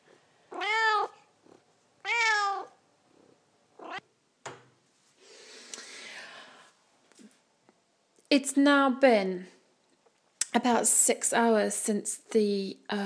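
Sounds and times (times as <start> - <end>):
hungry cat meowing: 0.5 - 1.2, 2.0 - 2.8, 3.8 - 4.0
soft rustling: 4.8 - 5.5
speech: 8.4 - 9.6, 10.6 - 13.0.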